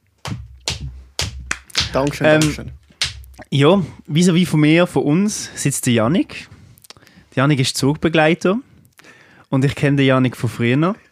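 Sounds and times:
slow hand claps welcoming a guest: 0.2s - 3.5s
speech: 1.9s - 2.8s, 3.5s - 6.6s, 7.4s - 11.0s.

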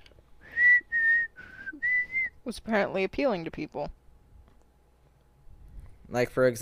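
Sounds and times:
whistled melody from a pop song: 0.4s - 2.3s
speech: 2.4s - 4.0s, 6.1s - 6.6s.

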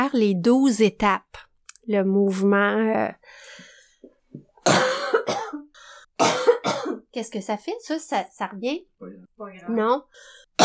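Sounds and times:
speech: 0.0s - 3.7s, 4.6s - 5.4s, 7.2s - 10.6s
breathing: 3.2s - 4.2s, 5.7s - 6.2s, 10.1s - 10.6s
person coughing harshly: 4.6s - 7.0s.

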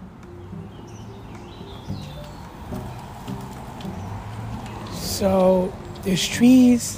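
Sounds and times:
birds chirping outdoors among sunlit trees: 0.0s - 6.9s
low outdoor noise: 0.0s - 6.9s
faint soft hoof-like knocks: 1.2s - 6.3s
speech: 5.2s - 6.9s.

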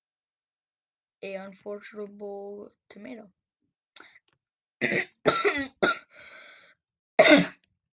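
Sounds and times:
speech: 1.2s - 3.4s
person coughing to clear something in throat: 4.8s - 6.2s, 7.2s - 7.6s.

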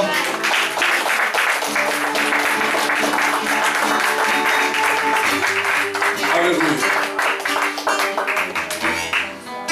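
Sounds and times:
crowd applauding: 0.0s - 9.6s
sustained musical tone: 2.0s - 9.4s.

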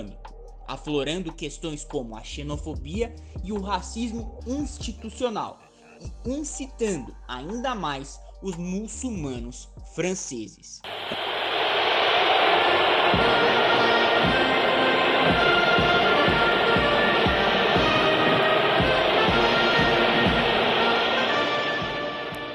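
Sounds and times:
speech: 0.0s - 11.3s, 13.1s - 13.5s
huge stadium crowd booing a national anthem: 10.9s - 22.5s
steady low rhythmic thumps: 12.1s - 22.5s.

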